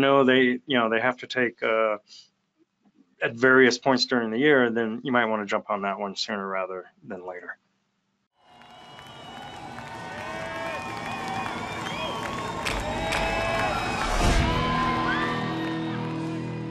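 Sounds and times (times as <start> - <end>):
speech: 0.0 - 2.3, 3.2 - 7.6
large crowd cheering with whoops and shouts: 8.4 - 16.5.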